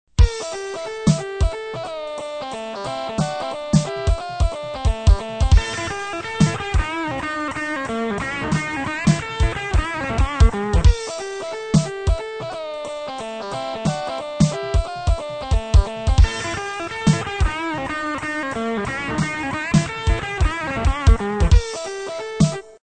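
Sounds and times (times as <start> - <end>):
swing music in swung eighth notes: 0.1 - 22.8.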